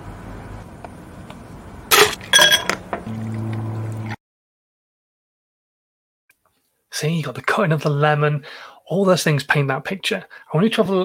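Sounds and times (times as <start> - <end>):
ice clinking and cracking against glass: 1.9 - 2.8
speech: 7.0 - 11.0.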